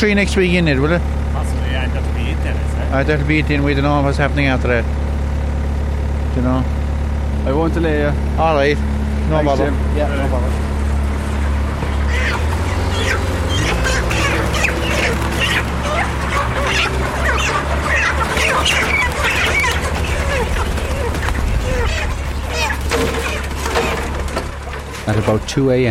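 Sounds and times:
speech: 0.0s - 5.0s, 6.4s - 6.8s, 7.4s - 10.7s, 25.1s - 25.8s
steady low mechanical rumble: 0.0s - 25.8s
crowd of chickens clucking and squawking: 9.0s - 25.8s.

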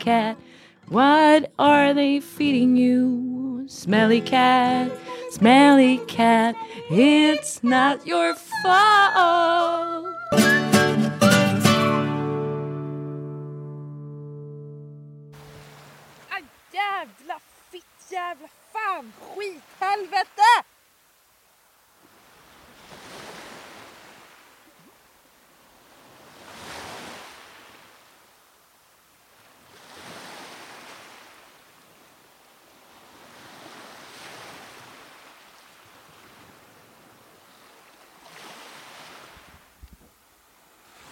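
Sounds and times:
speech: 0.0s - 10.6s, 18.1s - 20.7s
ocean waves rolling in and washing out: 0.0s - 11.9s, 15.3s - 41.0s.

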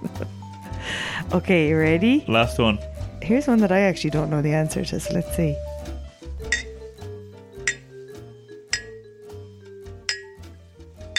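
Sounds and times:
speech: 1.3s - 5.7s
two glasses clinking together: 6.5s - 6.8s, 7.6s - 7.9s, 8.7s - 9.0s, 10.1s - 10.4s.

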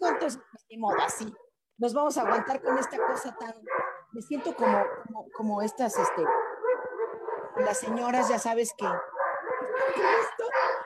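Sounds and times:
speech: 0.3s - 6.4s, 7.6s - 9.1s, 9.7s - 10.8s
dogs yelping and whimpering: 2.2s - 10.8s.

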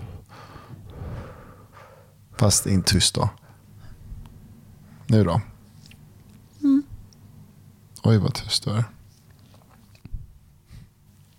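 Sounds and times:
heavy breathing blown straight into a microphone: 0.0s - 2.2s
speech: 2.4s - 3.4s, 5.1s - 5.5s, 8.0s - 9.0s.

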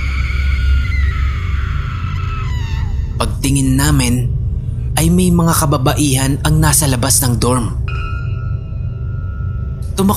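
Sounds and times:
loud drawn-out scream: 0.0s - 3.2s
deep rumbling background: 0.0s - 10.1s
speech: 3.2s - 4.4s, 5.0s - 7.8s, 10.0s - 10.1s.

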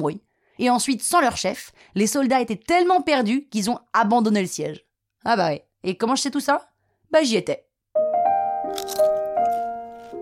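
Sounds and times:
speech: 0.0s - 7.7s
crunchy crisp food being bitten: 8.7s - 10.2s.

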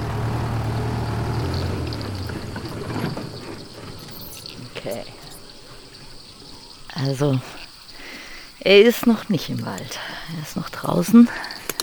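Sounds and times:
car engine humming while driving: 0.0s - 7.9s
rushing road noise: 0.0s - 9.9s
speech: 4.9s - 5.2s, 7.0s - 7.6s, 8.6s - 11.5s.

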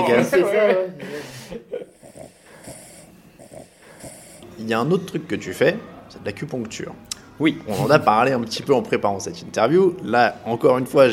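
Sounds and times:
speech: 0.0s - 1.8s, 4.6s - 11.1s
rhythmic breathy pulses from an animal: 1.0s - 4.9s
animal purring during osteopathy treatment of its neck: 1.8s - 5.0s.

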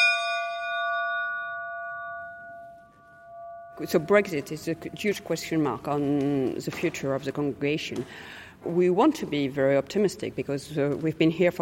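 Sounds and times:
old school bell struck once: 0.0s - 6.0s
speech: 3.8s - 11.6s.

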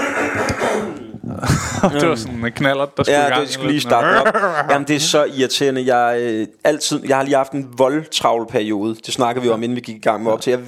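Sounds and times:
person coughing: 0.0s - 1.7s
laughter: 0.0s - 2.4s, 3.6s - 5.1s
speech: 1.8s - 10.6s.

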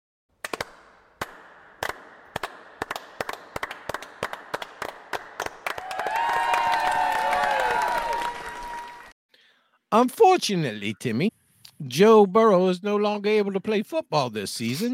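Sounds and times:
slow single claps in a bar after an arm-wrestling win: 0.4s - 6.7s
crowd cheering: 5.4s - 9.2s
speech: 9.9s - 14.9s.

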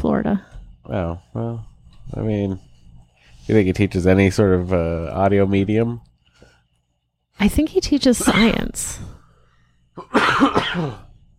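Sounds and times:
speech: 0.0s - 2.7s, 3.5s - 6.1s, 7.4s - 9.1s, 10.0s - 11.0s
cough: 8.2s - 8.7s, 10.0s - 11.2s
rough voiced throat clearing: 10.0s - 11.1s.

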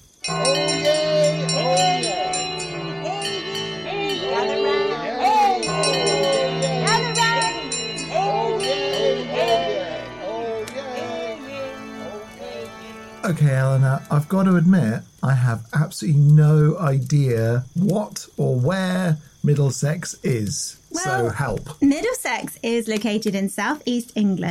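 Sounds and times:
church bells ringing: 0.2s - 10.6s
murmur of a lively crowd: 0.3s - 11.3s
children's voices: 4.0s - 9.6s
speech: 13.8s - 24.4s.

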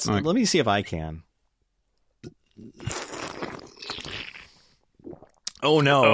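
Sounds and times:
speech: 0.0s - 1.3s, 2.2s - 3.0s, 5.6s - 6.1s
loud slurp of coffee: 2.7s - 5.4s.

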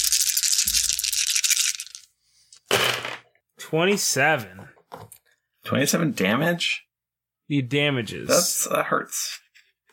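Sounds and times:
dice rattling in a hand during a tabletop role-playing game: 0.0s - 2.1s
speech: 3.7s - 4.8s, 5.7s - 6.8s, 7.5s - 9.3s.

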